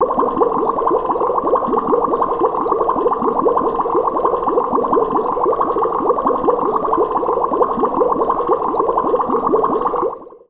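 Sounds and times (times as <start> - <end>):
long bubbling: 0.0 - 10.4.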